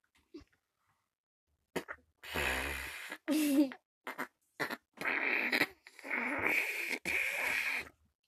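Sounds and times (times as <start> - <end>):
voice imitating a dog's fart with spluttering bursts: 1.7 - 3.4, 4.0 - 7.9.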